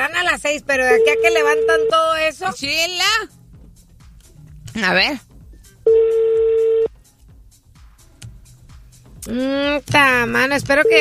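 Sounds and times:
speech: 0:00.3 - 0:03.4, 0:04.8 - 0:05.3, 0:09.2 - 0:10.9
telephone tone on a phone call: 0:00.9 - 0:02.0, 0:05.9 - 0:06.9.

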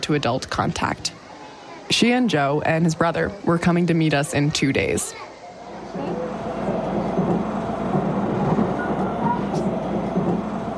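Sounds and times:
speech: 0:00.0 - 0:01.2, 0:01.9 - 0:05.3
train riding along the rails heard from inside the carriage: 0:05.8 - 0:10.7.

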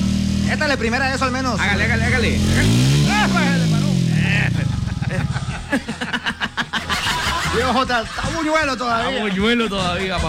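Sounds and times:
Suzuki Viva 150 FI ABS motorcycle engine revving: 0:00.0 - 0:08.2
speech: 0:00.5 - 0:10.2
laughter: 0:02.6 - 0:10.2.

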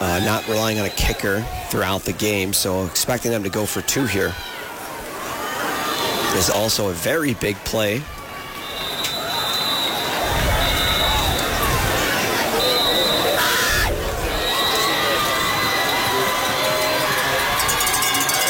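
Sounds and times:
loud football crowd roaring and cheering: 0:00.0 - 0:18.4
speech: 0:00.2 - 0:04.6, 0:06.3 - 0:08.2
crowd whistles: 0:08.6 - 0:11.7, 0:12.5 - 0:16.2.

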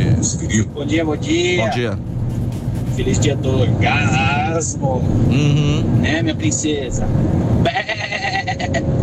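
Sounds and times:
speech: 0:00.2 - 0:02.1, 0:03.0 - 0:08.9
goat bleating: 0:07.7 - 0:08.6.

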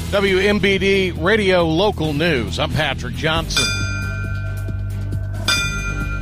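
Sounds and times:
speech: 0:00.1 - 0:03.8
memorial ceremony bells ringing at a museum's 9/11 remembrance ceremony: 0:03.4 - 0:06.2.

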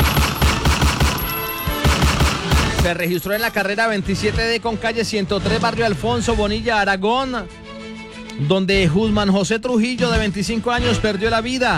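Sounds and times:
gunfire sound effect in rapid bursts: 0:00.0 - 0:03.2
speech: 0:02.9 - 0:07.6, 0:08.4 - 0:11.7.

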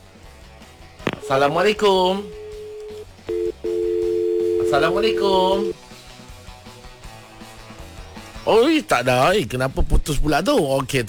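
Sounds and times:
short telephone beeps: 0:01.1 - 0:05.8
long steady electronic telephone tone: 0:01.2 - 0:05.8
speech: 0:01.3 - 0:02.4, 0:04.7 - 0:05.8, 0:08.5 - 0:11.0.

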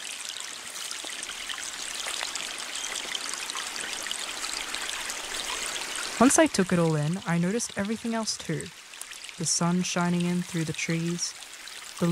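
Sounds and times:
small creek of murky stormwater runoff flowing over rocks in a park: 0:00.0 - 0:12.1
speech: 0:06.2 - 0:08.8, 0:09.4 - 0:11.4.

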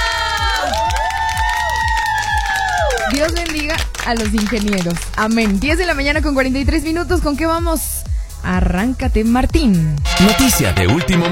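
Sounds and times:
crowd applause and cheering sound effect: 0:00.0 - 0:05.6
speech: 0:03.1 - 0:11.3.

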